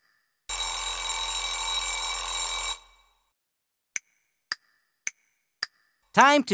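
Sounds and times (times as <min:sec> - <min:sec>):
alarm clock bell ringing: 0:00.5 - 0:03.1
speech: 0:06.2 - 0:06.5.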